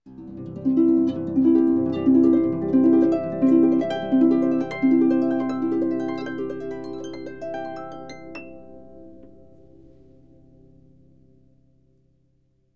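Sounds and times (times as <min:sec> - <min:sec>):
harp arpeggio: 0:00.1 - 0:11.0.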